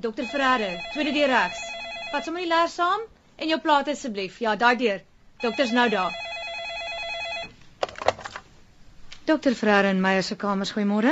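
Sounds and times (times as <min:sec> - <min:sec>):
speech: 0:00.0 - 0:06.2, 0:09.3 - 0:11.1
telephone at a doctors' reception ringing with an electronic trill: 0:00.1 - 0:02.6, 0:05.4 - 0:07.6.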